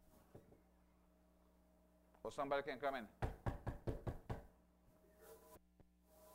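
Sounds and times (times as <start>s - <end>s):
speech: 2.2s - 3.2s
quick firm knocks on a door: 3.2s - 4.5s.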